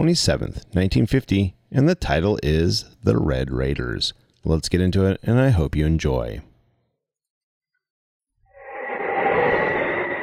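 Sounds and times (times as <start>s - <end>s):
speech: 0.0s - 6.5s
howling wind sound effect from a radio drama: 8.5s - 10.2s.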